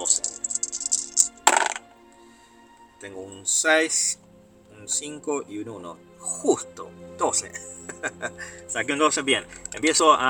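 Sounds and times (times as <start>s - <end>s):
tabletop game dice rattling on a hard surface: 0.0s - 1.8s
speech: 3.0s - 4.2s, 4.8s - 10.2s
laughter: 7.6s - 8.6s.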